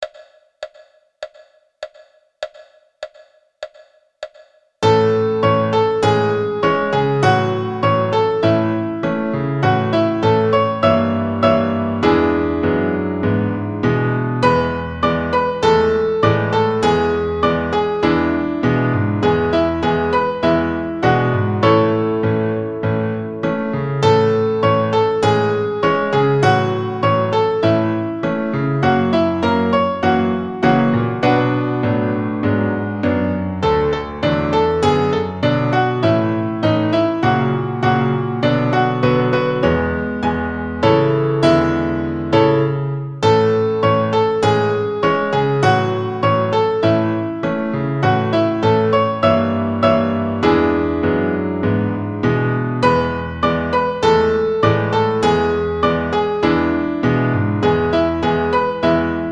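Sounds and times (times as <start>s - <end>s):
piano exercise played four hands: 4.8s - 59.3s.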